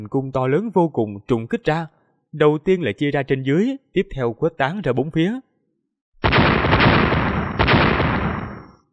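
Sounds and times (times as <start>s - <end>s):
speech: 0.0s - 5.5s
explosion blasts: 6.2s - 8.8s.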